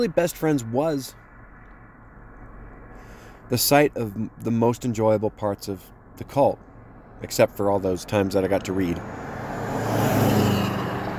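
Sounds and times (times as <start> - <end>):
speech: 0.0 - 1.2, 3.5 - 9.2
car rushing past with engine and road roar: 8.5 - 11.1.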